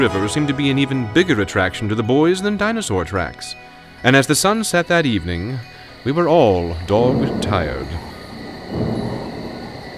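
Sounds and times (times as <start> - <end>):
speech: 0.0 - 8.1
low rumble of a distant thunderstorm over the Paluxy River at sunset: 6.7 - 9.9.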